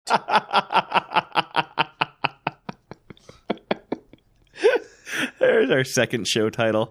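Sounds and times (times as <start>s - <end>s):
person laughing: 0.1s - 5.7s
person speaking: 0.1s - 6.8s.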